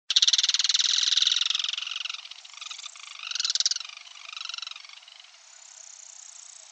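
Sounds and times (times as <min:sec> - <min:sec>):
Yellow-chinned spinetail churring notes: 0:00.1 - 0:05.4.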